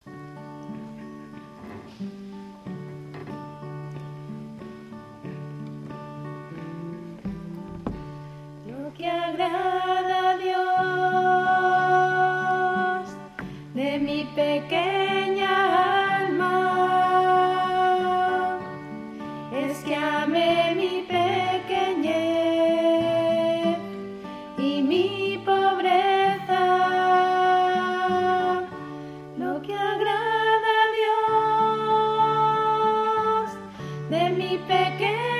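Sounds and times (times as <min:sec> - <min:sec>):
soprano voices singing: 0:06.3 - 0:35.3.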